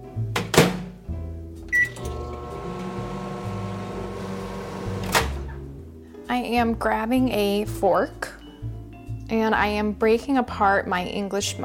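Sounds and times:
microwave oven humming with a low electrical drone: 1.8 - 5.2
speech: 6.4 - 8.4, 9.3 - 11.6.

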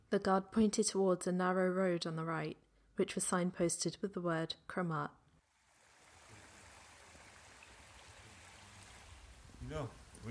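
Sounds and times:
speech: 0.1 - 5.2, 9.7 - 10.2
small stream trickling and burbling: 5.4 - 10.2.

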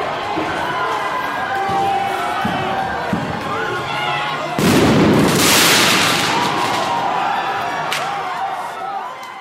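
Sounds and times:
noisy crowd of shouting voices at street protest: 0.0 - 9.3
firework exploding during street protest: 4.6 - 7.2.

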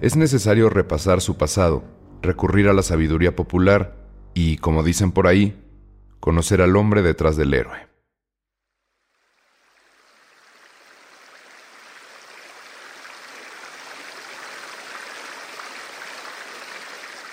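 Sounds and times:
speech: 0.0 - 5.6, 6.2 - 7.9
Magdalena River in Colombia flowing: 9.4 - 17.3.

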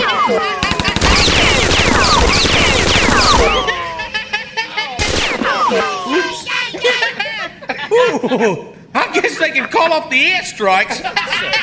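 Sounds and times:
laughter: 0.0 - 9.8, 10.8 - 11.6
rapid gunfire: 0.6 - 4.0, 5.0 - 5.7
speech: 8.3 - 11.6.

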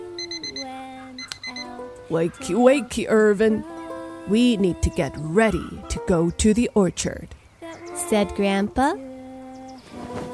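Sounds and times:
alarm clock ringing in electronic beeps: 0.0 - 1.7
speech: 2.1 - 7.4, 8.1 - 9.1.

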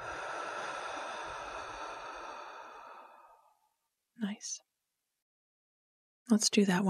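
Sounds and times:
deep breath in through the nose and out through the mouth: 0.0 - 3.8
speech: 4.3 - 4.7, 6.3 - 6.8.

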